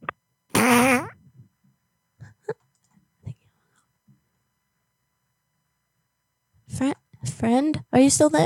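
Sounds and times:
loud buzzy fart: 0:00.0 - 0:01.2
speech: 0:06.8 - 0:08.4.

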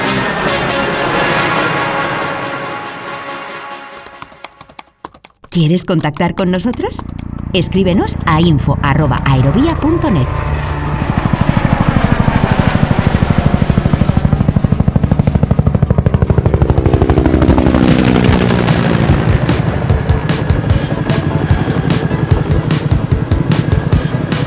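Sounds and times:
helicopter engine whine: 0:00.0 - 0:04.2, 0:06.6 - 0:24.4
hovering helicopter rotor thumping: 0:03.9 - 0:24.4
speech: 0:05.6 - 0:10.6.

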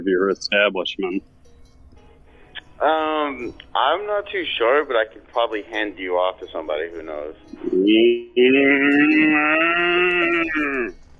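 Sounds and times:
speech: 0:00.0 - 0:01.5, 0:02.8 - 0:11.0
person imitating a dairy cow's moo: 0:07.7 - 0:10.9.

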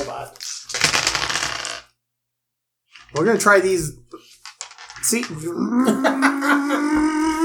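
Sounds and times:
dice clattering across a hard surface: 0:00.6 - 0:01.9, 0:04.2 - 0:05.5
speech: 0:03.1 - 0:04.4, 0:05.0 - 0:07.2
laughter: 0:05.6 - 0:07.4.

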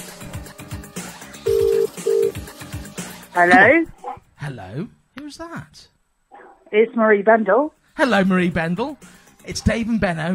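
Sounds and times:
rhythmic music: 0:00.0 - 0:04.2, 0:07.8 - 0:10.3
telephone ringback tone on an outgoing call: 0:01.5 - 0:02.4
speech: 0:03.4 - 0:05.9, 0:06.7 - 0:10.3.

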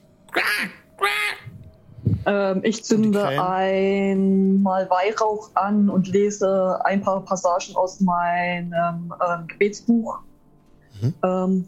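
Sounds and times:
ravens calling overhead: 0:00.3 - 0:01.6
speech: 0:02.3 - 0:10.3, 0:11.0 - 0:11.6.

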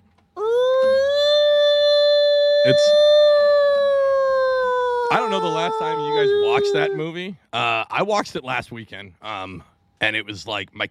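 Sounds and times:
voice mimicking an emergency siren: 0:00.4 - 0:07.3
speech: 0:02.6 - 0:03.0, 0:05.1 - 0:10.8.

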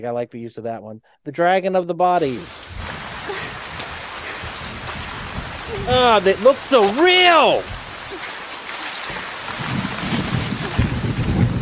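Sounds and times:
speech: 0:00.0 - 0:02.6, 0:05.7 - 0:07.8
steady dense rain hiss: 0:02.2 - 0:11.6
deep rolling low rumble: 0:02.3 - 0:06.7, 0:09.3 - 0:11.6.

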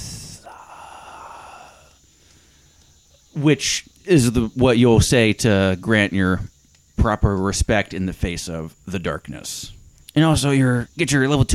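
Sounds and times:
person imitating a whispered exhale: 0:00.0 - 0:02.7
speech: 0:03.4 - 0:11.5.

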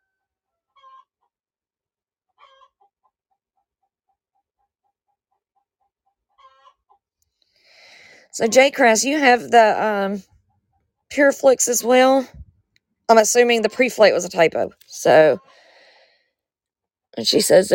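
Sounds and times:
hen cackling: 0:02.4 - 0:02.8, 0:06.4 - 0:06.8
speech: 0:08.4 - 0:10.3, 0:11.2 - 0:12.4, 0:13.1 - 0:15.6, 0:17.2 - 0:17.7.

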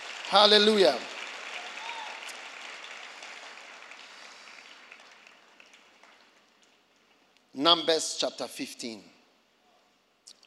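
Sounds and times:
crowd of people clapping and applauding in a large room: 0:00.0 - 0:07.3
speech: 0:00.3 - 0:01.1, 0:07.6 - 0:09.1.

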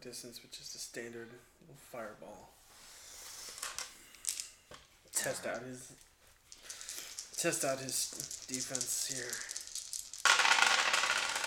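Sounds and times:
speech: 0:00.0 - 0:02.6, 0:05.2 - 0:06.1, 0:07.4 - 0:09.6
dice clattering across a table: 0:03.5 - 0:04.8, 0:05.9 - 0:11.4.

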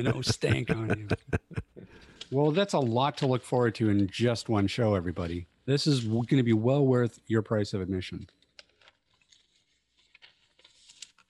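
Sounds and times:
speech: 0:00.0 - 0:01.6, 0:02.3 - 0:08.4
laughter: 0:00.0 - 0:02.0
paper being crinkled: 0:08.3 - 0:11.2.

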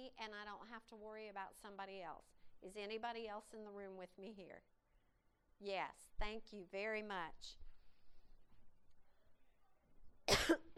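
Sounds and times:
speech: 0:00.1 - 0:04.7, 0:05.6 - 0:07.7
single sharp throaty cough: 0:10.3 - 0:10.7.

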